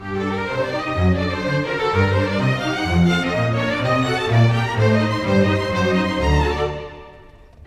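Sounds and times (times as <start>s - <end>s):
orchestral strings: 0.0s - 7.6s.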